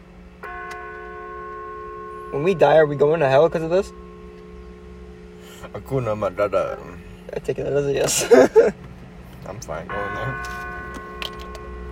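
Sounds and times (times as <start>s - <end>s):
bell ringing with a sustained shimmering tone: 0.4s - 7.1s, 9.9s - 11.9s
speech: 2.3s - 4.0s, 5.7s - 8.8s, 9.5s - 10.7s.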